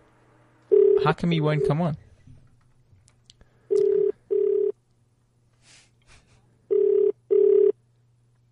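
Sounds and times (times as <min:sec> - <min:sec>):
faint hum: 0:00.0 - 0:08.5
outgoing call telephone ringing tone: 0:00.7 - 0:01.8, 0:03.7 - 0:04.8, 0:06.7 - 0:07.8
speech: 0:01.0 - 0:02.0.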